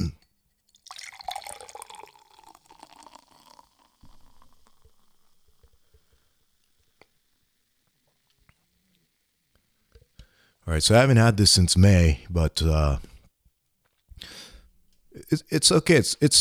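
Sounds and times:
faint drips and clinks: 0:00.0 - 0:10.3
hazy IPA pouring into a brewery glass: 0:00.7 - 0:08.7
soft fizz of beer: 0:00.7 - 0:10.2
speech: 0:10.7 - 0:13.1, 0:15.3 - 0:16.3.

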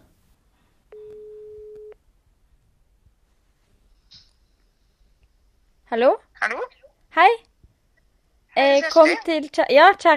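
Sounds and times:
quiet hiss: 0:00.0 - 0:10.1
telephone ringing tone: 0:01.0 - 0:02.0
speech: 0:05.9 - 0:07.5, 0:08.6 - 0:10.1.

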